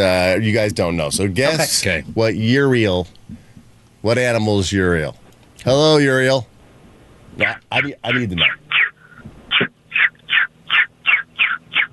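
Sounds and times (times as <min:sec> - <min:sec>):
speech: 0:00.0 - 0:03.4, 0:04.0 - 0:06.5, 0:07.4 - 0:08.6
person imitating baby chick peeps: 0:07.4 - 0:11.9.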